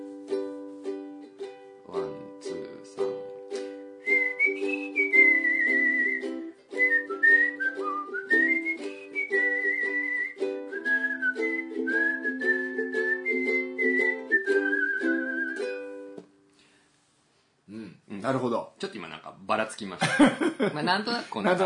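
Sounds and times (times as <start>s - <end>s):
steady strummed ukulele accompaniment: 0.0s - 16.4s
person whistling a clear wandering tune: 3.5s - 16.2s
speech: 18.3s - 21.6s.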